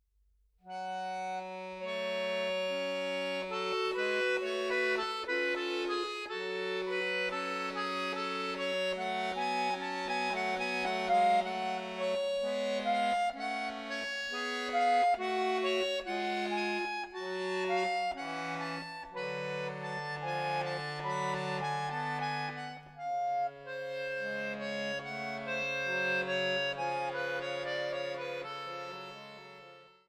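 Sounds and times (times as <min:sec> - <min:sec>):
prelude in a minor key: 0:00.6 - 0:30.0.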